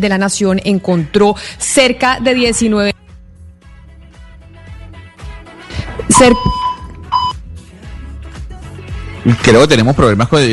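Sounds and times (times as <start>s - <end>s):
speech: 0.0s - 3.0s, 6.2s - 6.7s, 9.2s - 10.5s
electronic alarm sharp high beeps: 6.1s - 7.4s.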